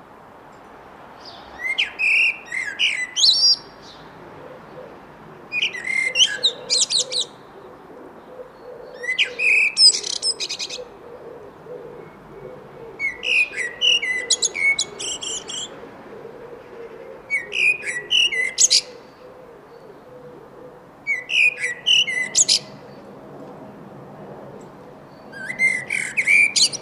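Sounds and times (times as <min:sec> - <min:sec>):
common blackbird Turdus merula song phrases: 0:01.2 - 0:04.8, 0:05.5 - 0:07.6, 0:08.2 - 0:15.8, 0:16.7 - 0:20.2, 0:21.1 - 0:23.1, 0:24.6 - 0:26.8.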